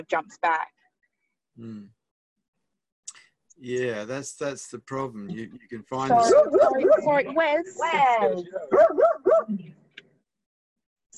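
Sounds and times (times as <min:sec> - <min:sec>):
speech: 0:00.0 - 0:00.8, 0:01.6 - 0:02.0, 0:03.6 - 0:09.8
dog barking: 0:06.2 - 0:07.0, 0:08.7 - 0:09.5.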